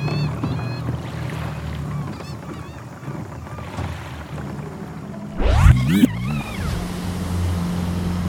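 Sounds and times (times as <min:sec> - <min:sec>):
fishing boat engine droning on open water: 0:00.0 - 0:08.2
wind: 0:00.0 - 0:08.2.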